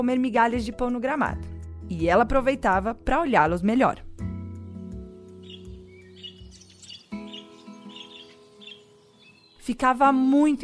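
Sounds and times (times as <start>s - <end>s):
speech: 0.0s - 4.1s, 9.7s - 10.6s
birds chirping and tweeting in a garden: 4.6s - 10.6s.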